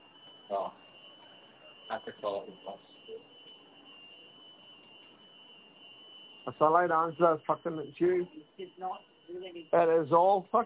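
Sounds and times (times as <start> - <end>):
security alarm sounding a high-pitched tone: 0.0 - 10.6
speech: 1.9 - 3.4, 6.4 - 10.6.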